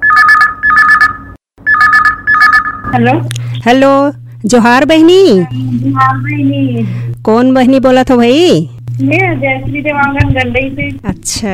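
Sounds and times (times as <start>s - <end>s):
telephone ringing for an incoming call with electronic two-tone warbling ring: 0.0s - 3.0s
speech: 2.9s - 11.5s.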